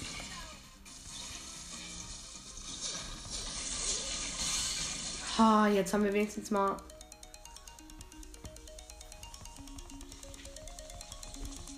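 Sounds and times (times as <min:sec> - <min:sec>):
speech: 0:05.4 - 0:06.9
melodic electronic message notification tone on a phone: 0:06.7 - 0:11.7.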